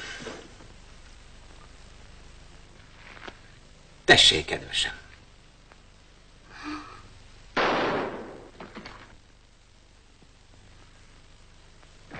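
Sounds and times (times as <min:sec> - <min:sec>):
speech: 0:04.1 - 0:05.0
gunshot with brief tail: 0:07.5 - 0:08.6
faint pop: 0:07.5 - 0:09.1.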